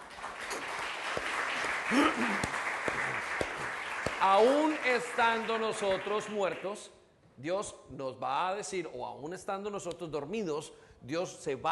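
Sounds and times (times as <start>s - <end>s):
audience applauding: 0.0s - 6.8s
speech: 1.9s - 2.6s, 4.2s - 11.7s.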